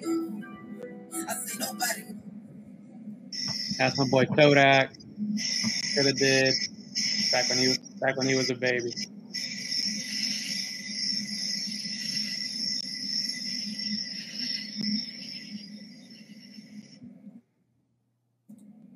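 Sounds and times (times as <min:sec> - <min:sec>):
crickets chirping: 0:03.3 - 0:17.0
speech: 0:03.8 - 0:06.7, 0:07.3 - 0:09.1.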